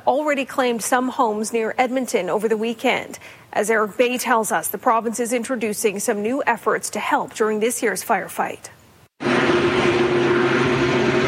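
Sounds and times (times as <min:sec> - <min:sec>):
speech: 0:00.0 - 0:08.8
helicopter hovering over a wildfire in Parkland County near Edmonton: 0:09.2 - 0:11.2.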